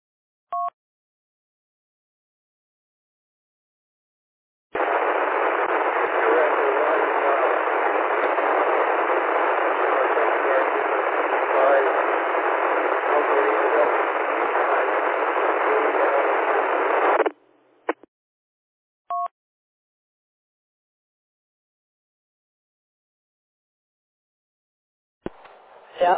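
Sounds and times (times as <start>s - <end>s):
weak broken-up radio transmission from a calling station: 4.8s - 18.1s.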